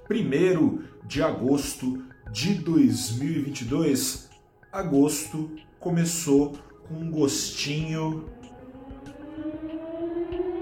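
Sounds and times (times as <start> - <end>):
speech: 0.1 - 8.5
siren wailing: 7.6 - 10.5.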